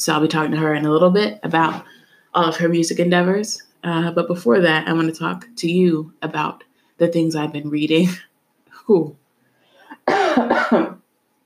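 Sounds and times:
speech: 0.0 - 9.2, 10.1 - 11.0
person coughing rough throaty coughs: 9.9 - 11.0.

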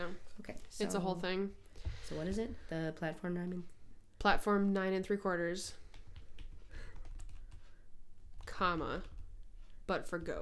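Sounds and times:
speech: 0.1 - 5.8, 8.6 - 9.1, 9.9 - 10.3
typing on a computer keyboard: 5.8 - 7.7.

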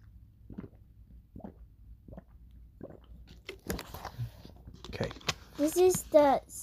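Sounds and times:
person gulping drinking water: 0.0 - 4.3
child's voice: 5.6 - 6.6.

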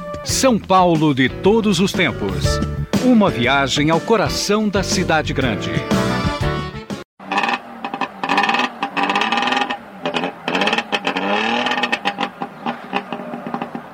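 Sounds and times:
speech: 0.2 - 6.0
small old DKV car engine roaring and revving: 7.2 - 13.9.

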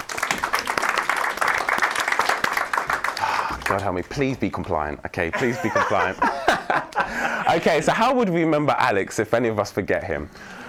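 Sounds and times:
crowd applause: 0.0 - 3.8
speech: 3.7 - 10.6
laughter: 5.3 - 7.8.

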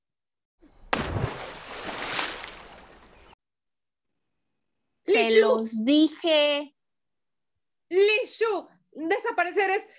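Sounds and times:
bucket of water dumped onto fighting cats: 0.9 - 3.4
speech: 5.1 - 6.8, 7.9 - 9.9.

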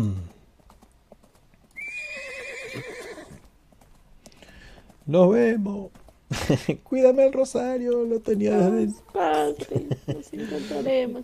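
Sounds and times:
horse hooves clip-clopping as a rider rides away: 0.2 - 11.2
horse whinnying: 1.8 - 3.4
speech: 5.1 - 11.2
laughter: 6.3 - 6.8, 9.4 - 10.8.

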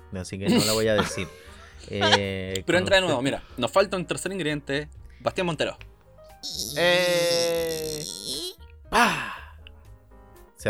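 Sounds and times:
speech: 0.1 - 9.3
laughter: 0.5 - 2.5
voice imitating a door creaking open and shut: 6.4 - 8.6.

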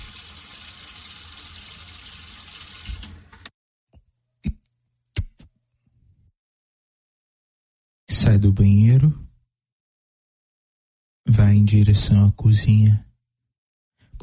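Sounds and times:
tap water running into a bathroom sink: 0.0 - 3.5
speech: 8.3 - 9.3, 11.4 - 13.1.

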